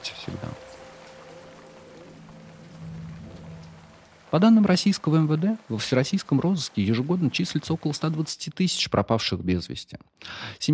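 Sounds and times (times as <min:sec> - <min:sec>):
faint low droning hum: 0:00.0 - 0:08.2
rain falling steadily in an even hiss: 0:00.0 - 0:08.8
speech: 0:04.3 - 0:10.7.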